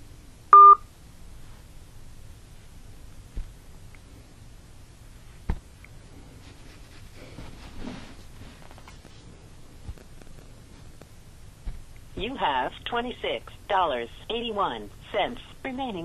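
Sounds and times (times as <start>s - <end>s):
telephone keypad tone on a prepaid calling line: 0.6s - 0.8s
speech: 12.2s - 16.0s.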